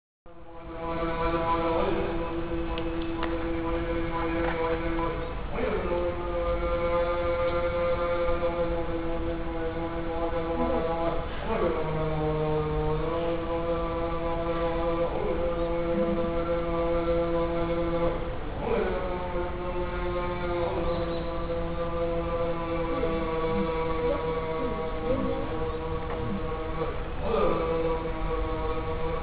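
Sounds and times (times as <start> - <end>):
Buddhist praying in Japan: 0.3 - 29.2.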